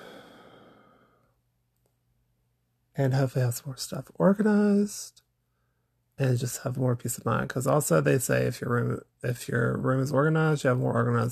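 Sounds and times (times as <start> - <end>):
deep breath let out as a soft breathy sigh: 0.0 - 1.3
speech: 3.0 - 5.2, 6.2 - 11.3.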